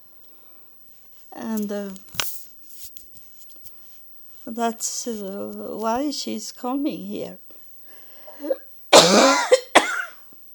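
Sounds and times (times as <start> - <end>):
speech: 1.4 - 2.3, 4.5 - 7.4
faint raspy throat sound: 8.3 - 9.4
loud cough: 8.3 - 10.2.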